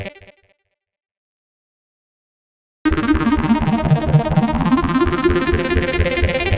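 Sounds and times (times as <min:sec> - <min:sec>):
complex electro synths in G at 129 BPM: 0:02.9 - 0:06.5.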